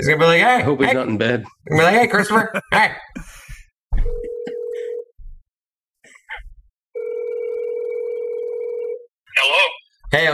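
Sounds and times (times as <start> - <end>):
speech: 0.0 - 3.4, 9.4 - 10.3
mobile phone electronic ringback tone: 4.0 - 5.1, 7.0 - 9.1.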